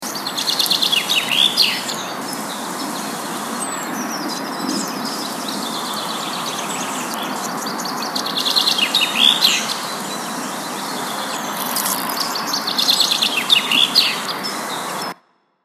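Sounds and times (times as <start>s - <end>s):
birds singing: 0.0s - 15.2s.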